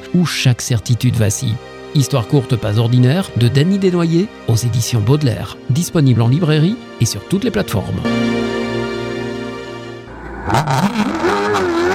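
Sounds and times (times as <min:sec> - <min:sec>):
speech: 0:00.1 - 0:08.6, 0:10.5 - 0:11.0
off-road race car engine accelerating at a dirt-circuit car-cross event: 0:10.1 - 0:11.9.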